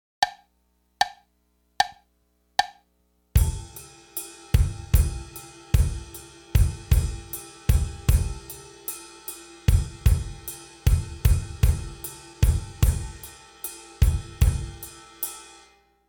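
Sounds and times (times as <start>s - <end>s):
drums: 3.4s - 15.8s.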